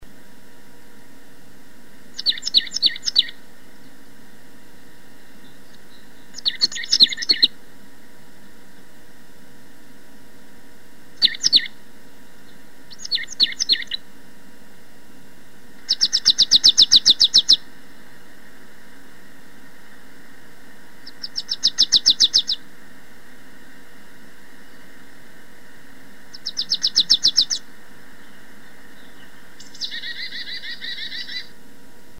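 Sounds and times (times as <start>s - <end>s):
birds calling: 2.0s - 4.2s, 5.0s - 7.7s, 11.1s - 14.3s, 15.6s - 31.6s
marsh tit calling: 2.1s - 4.0s, 5.4s - 7.6s, 11.2s - 11.8s, 12.4s - 14.1s, 15.8s - 18.1s, 21.0s - 22.7s, 26.2s - 31.6s.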